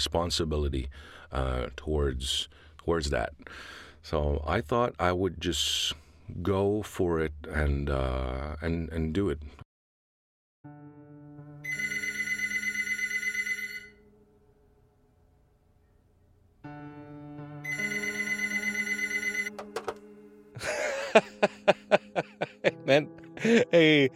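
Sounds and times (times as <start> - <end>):
speech: 0.0 - 9.6, 20.6 - 21.8, 22.9 - 24.1
telephone ringing in long trilling bursts: 11.6 - 14.1, 17.6 - 20.1
laughter: 20.6 - 24.1.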